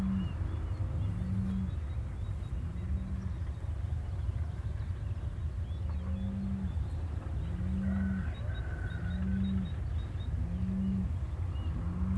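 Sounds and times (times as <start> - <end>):
day birds: 0.0 - 12.1
wind: 0.0 - 12.1.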